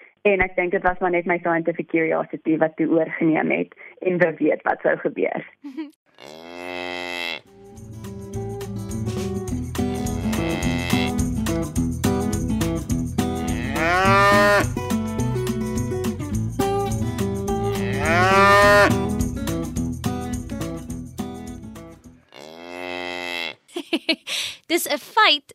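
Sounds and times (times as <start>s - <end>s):
speech: 0.2s - 6.3s, 24.7s - 25.5s
cow mooing: 6.2s - 7.6s, 9.9s - 11.2s, 13.4s - 14.7s, 17.7s - 19.0s, 22.3s - 23.6s
music: 7.5s - 22.2s
laughter: 23.7s - 24.6s.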